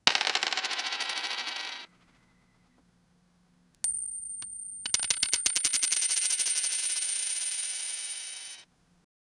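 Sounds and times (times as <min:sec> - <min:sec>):
multiple coins falling: 0:00.0 - 0:01.9, 0:03.8 - 0:08.7.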